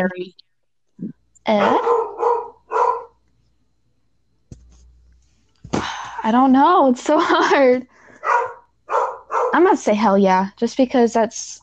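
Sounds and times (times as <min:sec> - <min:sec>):
speech: 0:00.0 - 0:00.4, 0:01.0 - 0:02.1, 0:06.2 - 0:08.5, 0:09.5 - 0:11.6
dog barking with howl-like tones: 0:01.6 - 0:03.2, 0:08.2 - 0:09.7.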